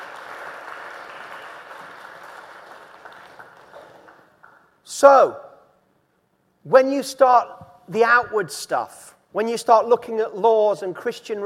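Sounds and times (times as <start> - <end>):
crowd applauding: 0.0 - 4.7
speech: 5.0 - 5.4, 6.6 - 11.4.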